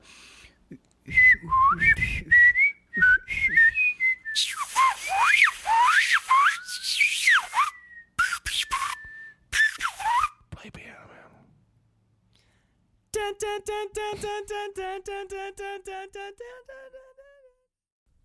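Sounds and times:
person whistling a short lilting tune: 1.1s - 10.4s
speech: 13.9s - 17.0s.

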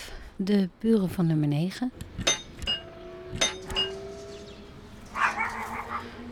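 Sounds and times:
speech: 0.4s - 2.2s
dog barking: 5.1s - 6.2s.

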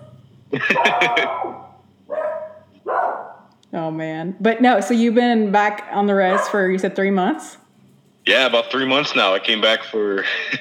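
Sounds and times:
dog on a reservation barking: 0.0s - 3.5s, 6.2s - 6.7s
speech: 0.5s - 1.6s, 3.8s - 7.6s, 8.2s - 10.5s
laughter: 0.5s - 1.8s, 8.5s - 10.5s
dog yelping: 0.7s - 3.5s, 6.3s - 6.6s.

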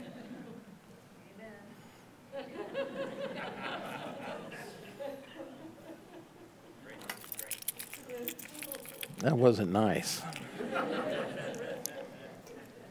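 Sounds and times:
laughter: 2.3s - 7.0s, 10.2s - 12.9s
truck, house, office and master keys jangling on a key chain: 7.0s - 9.3s
speech: 9.2s - 11.1s.

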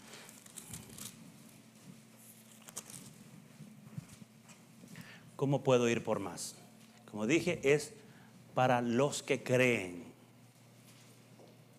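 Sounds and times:
many people turning thin Bible pages: 0.0s - 5.1s
low steady hum: 0.0s - 11.7s
speech: 5.4s - 8.0s, 8.6s - 10.1s.

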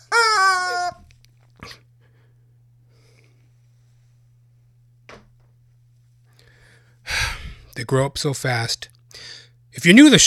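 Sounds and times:
chicken squawking: 0.0s - 1.0s
speech: 7.8s - 10.2s.

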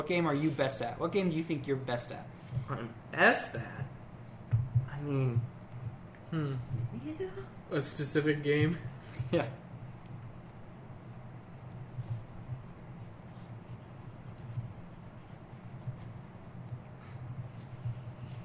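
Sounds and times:
speech: 0.0s - 3.9s, 5.0s - 5.5s, 6.3s - 9.6s
steady low hum: 0.0s - 18.4s
pen scratching on paper circling an answer: 10.2s - 16.2s.

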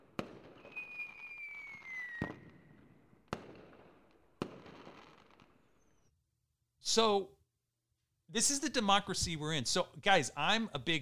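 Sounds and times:
whistling firework rocket gliding downward: 0.0s - 3.0s
sharp firework bangs: 0.0s - 5.6s
speech: 6.9s - 7.4s, 8.3s - 11.0s.

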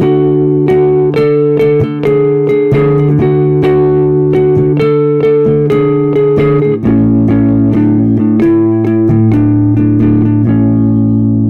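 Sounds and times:
opening riff in the Lydian scale of quick plucked notes over sustained lower tones: 0.0s - 11.4s.

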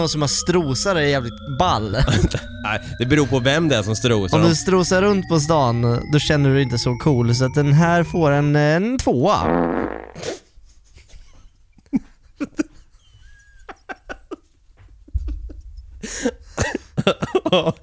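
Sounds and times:
speech: 0.0s - 10.4s, 17.5s - 17.8s
laughter: 1.8s - 2.8s, 11.0s - 17.8s
wet fart sound effect: 9.4s - 10.4s.

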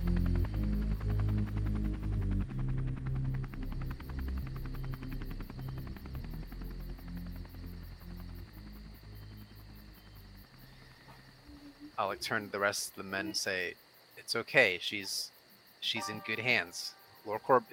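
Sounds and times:
helicopter rotor chopping: 0.0s - 10.7s
helicopter deep engine drone: 0.0s - 12.3s
speech: 12.0s - 17.7s.

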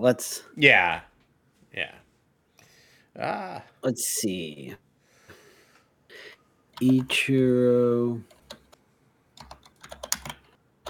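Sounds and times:
speech: 0.0s - 1.1s, 1.8s - 2.0s, 3.2s - 4.8s, 6.2s - 8.3s
typing on a computer keyboard: 8.3s - 8.8s, 9.4s - 10.8s.

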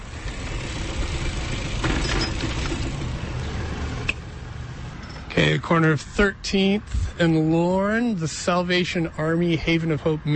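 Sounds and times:
car engine braking and idling at a stop sign: 0.0s - 4.8s
speech: 5.4s - 10.3s.

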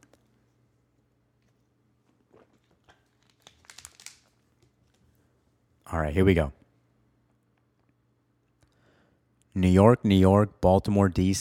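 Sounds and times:
plastic water bottle crinkling: 1.4s - 5.0s
speech: 5.9s - 6.6s, 9.6s - 11.3s.

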